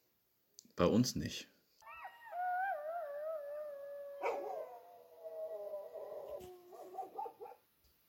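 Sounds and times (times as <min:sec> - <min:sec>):
speech: 0:00.8 - 0:01.5
jackals howling: 0:01.8 - 0:07.6
jackals quavering yips: 0:01.8 - 0:07.6.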